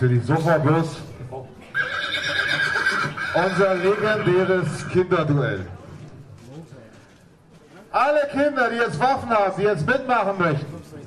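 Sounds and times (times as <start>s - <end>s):
speech: 0.0s - 1.1s, 3.4s - 5.8s, 8.0s - 11.0s
horse pulling a carriage whinnying: 1.7s - 5.1s.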